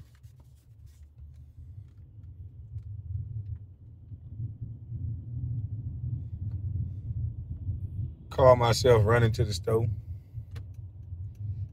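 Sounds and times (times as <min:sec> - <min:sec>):
car engine rumble from inside a car moving in traffic: 0:00.0 - 0:11.7
speech: 0:08.4 - 0:10.0.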